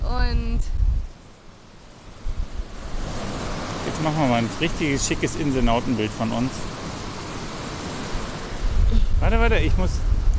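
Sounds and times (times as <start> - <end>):
low gusts of wind buffeting the microphone: 0.0 - 1.2, 2.1 - 3.8, 8.2 - 10.3
sea waves rolling onto the shore: 2.0 - 10.3
speech: 4.0 - 6.7, 9.2 - 10.1.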